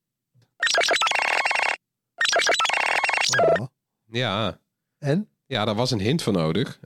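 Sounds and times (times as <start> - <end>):
smartphone ringtone of bright glitchy electronic chimes: 0.6 - 3.6
speech: 3.3 - 6.8.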